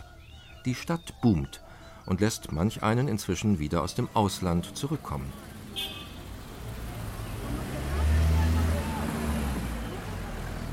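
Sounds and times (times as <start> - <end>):
busy congested city street traffic in Tirana: 0.0 - 10.7
speech: 0.6 - 6.0
deep vehicle rumble: 4.6 - 10.7.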